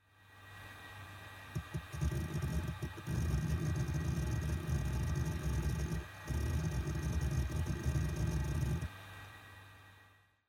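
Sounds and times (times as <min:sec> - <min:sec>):
hard disk drive operating noise: 0:01.4 - 0:08.9.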